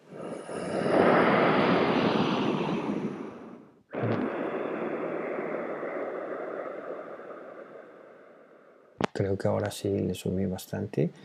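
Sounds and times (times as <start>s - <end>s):
loud ocean-like ujjayi breathing close to the microphone: 0.0s - 9.0s
speech: 9.2s - 11.2s.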